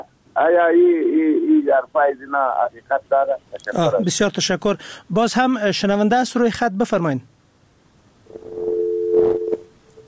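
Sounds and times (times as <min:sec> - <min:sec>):
speech: 0:00.0 - 0:07.4
electronic phone-line tone after a dropped call: 0:08.3 - 0:10.0.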